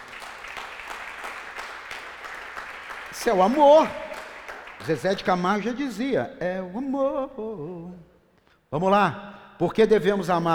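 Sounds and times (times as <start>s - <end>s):
audience applause: 0.0s - 5.3s
speech: 3.2s - 4.0s, 4.8s - 8.1s, 8.7s - 10.5s.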